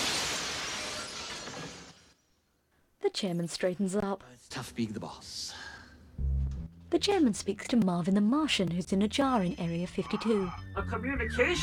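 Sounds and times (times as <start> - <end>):
plate glass window shattering: 0.0 - 2.1
speech: 3.1 - 5.7, 6.9 - 11.6.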